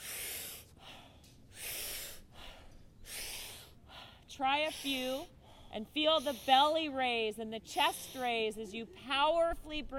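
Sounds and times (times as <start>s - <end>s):
deep forceful inhales and soft exhales in a breathing exercise: 0.0s - 7.0s
speech: 4.4s - 9.9s.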